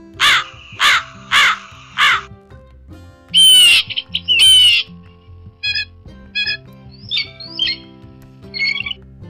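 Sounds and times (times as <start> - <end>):
crows cawing with harsh raspy squawks: 0.0 - 2.3, 3.4 - 4.9.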